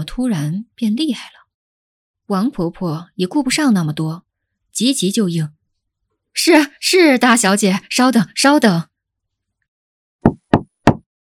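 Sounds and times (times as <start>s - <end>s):
speech: 0.0s - 1.4s, 2.3s - 5.6s, 6.4s - 8.9s
sharp forceful knocking on an old side door: 10.2s - 11.1s.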